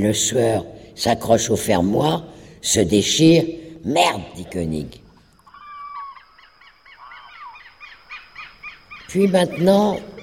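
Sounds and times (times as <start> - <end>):
speech: 0.0 - 5.0, 9.1 - 10.2
birds chirping in daylight on a town square: 3.6 - 10.2.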